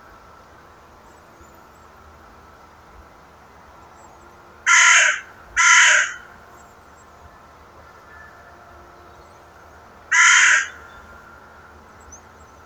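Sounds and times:
Carrion crow Corvus corone cawing harshly: 4.7 - 6.4, 10.1 - 11.2.

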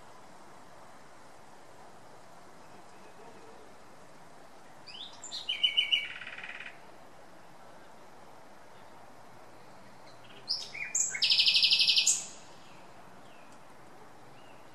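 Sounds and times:
common nightingale Luscinia megarhynchos singing: 4.8 - 6.9, 9.6 - 13.7, 14.3 - 14.7.

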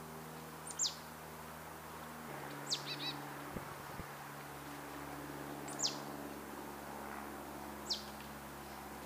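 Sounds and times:
steady low hum: 0.0 - 9.0
faint marsh tit Poecile palustris calls: 0.6 - 1.0, 2.7 - 3.2.

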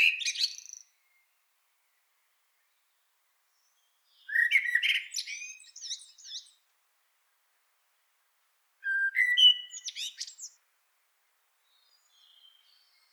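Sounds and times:
Eurasian blackbird Turdus merula singing: 0.0 - 1.0, 4.1 - 6.6, 8.8 - 10.6, 11.7 - 13.1.

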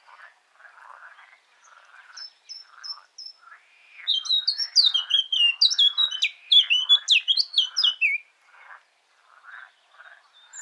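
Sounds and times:
Eurasian blackcap Sylvia atricapilla singing a chattering warble with fluty whistled notes: 4.1 - 8.2.

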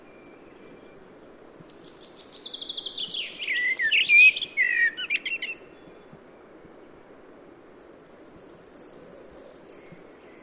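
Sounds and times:
common blackbird Turdus merula singing: 2.4 - 5.6.

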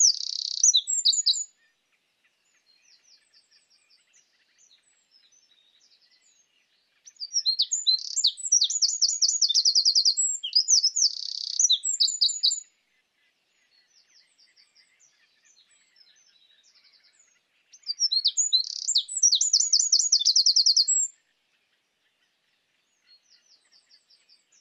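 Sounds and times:
Eurasian wren Troglodytes troglodytes song with rapid trills: 0.0 - 1.6, 4.7 - 12.7, 15.8 - 21.2.

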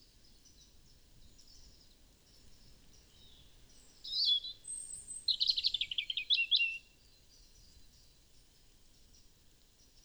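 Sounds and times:
European robin singing: 3.2 - 6.8.

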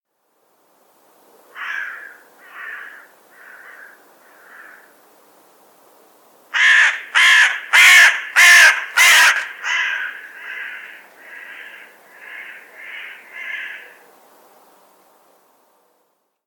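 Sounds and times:
carrion crow Corvus corone cawing: 1.5 - 5.0, 6.6 - 14.0.

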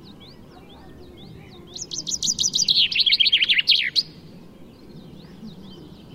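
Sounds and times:
common chaffinch Fringilla coelebs song: 0.0 - 6.1
low background noise: 0.0 - 6.1.

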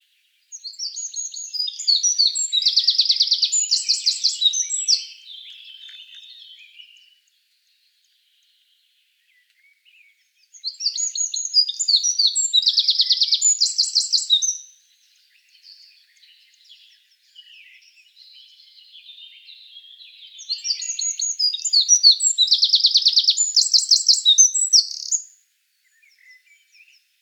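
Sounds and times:
Eurasian wren Troglodytes troglodytes singing high sharp notes and rattling trills: 0.5 - 7.0, 10.5 - 14.8, 15.5 - 25.3.

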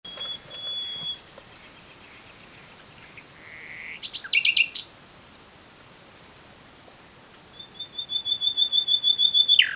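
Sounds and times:
steady background noise: 0.0 - 9.7
common nightingale whistle song: 0.1 - 1.3, 3.8 - 4.9, 7.5 - 9.7.

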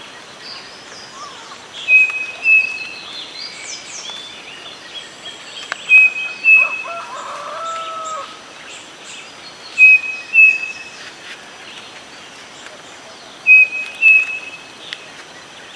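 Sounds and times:
steady background noise: 0.0 - 15.7
bird whistling: 1.2 - 3.0, 5.9 - 7.1, 9.8 - 10.9, 13.5 - 14.7.

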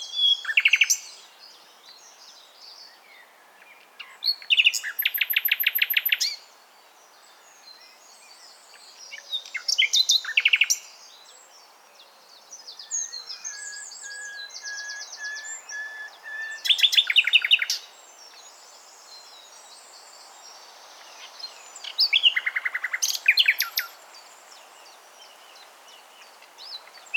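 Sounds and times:
common nightingale Luscinia megarhynchos singing: 0.0 - 6.5, 7.2 - 27.1.

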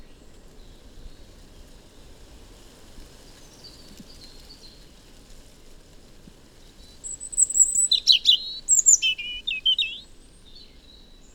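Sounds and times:
European robin Erithacus rubecula song: 7.0 - 10.6.

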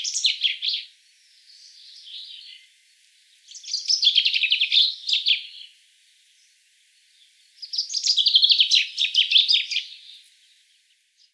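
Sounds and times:
common chaffinch Fringilla coelebs song: 0.0 - 2.7, 3.5 - 5.7, 7.6 - 10.2.

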